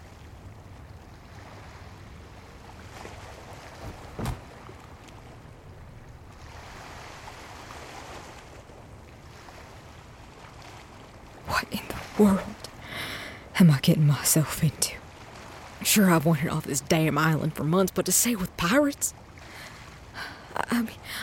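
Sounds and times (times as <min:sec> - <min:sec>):
water lapping against empty harbor docks: 0:00.0 - 0:21.2
sharp wooden knock: 0:03.8 - 0:04.4
speech: 0:11.7 - 0:12.5, 0:13.6 - 0:15.0, 0:15.9 - 0:19.2, 0:20.8 - 0:21.2.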